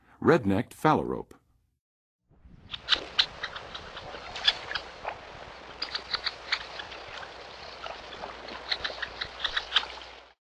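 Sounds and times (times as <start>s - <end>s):
Red-necked Phalarope: 2.6s - 10.2s.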